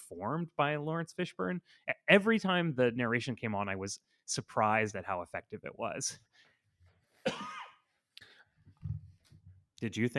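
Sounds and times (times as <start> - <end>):
speech: 0.1 - 6.4, 9.8 - 10.1
sharp person coughing: 7.2 - 7.9.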